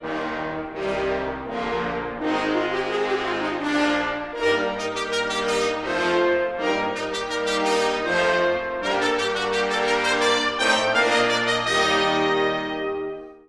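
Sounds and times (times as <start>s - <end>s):
brass instruments playing: 0.0s - 13.4s.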